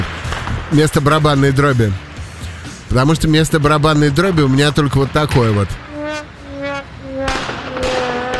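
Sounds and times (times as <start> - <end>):
fireworks sound effect crackling bangs: 0.0 - 0.8, 5.8 - 8.3
speech: 0.7 - 2.0, 2.9 - 5.8
soft steady tones: 3.7 - 8.3.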